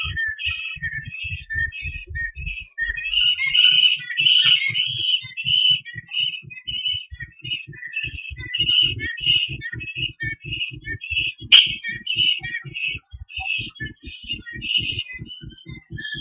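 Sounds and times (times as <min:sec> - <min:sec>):
bird song of whistled notes repeated in quick phrases: 0:00.0 - 0:16.2
steady low thumping pulses: 0:00.0 - 0:16.2.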